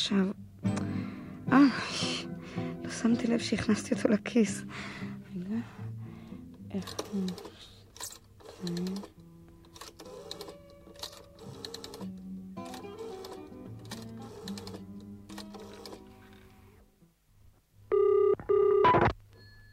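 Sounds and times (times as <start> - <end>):
speech: 0.0 - 0.4, 1.5 - 5.7, 6.7 - 7.6, 8.6 - 9.1
telephone ringing in buzzy bursts: 17.9 - 19.7.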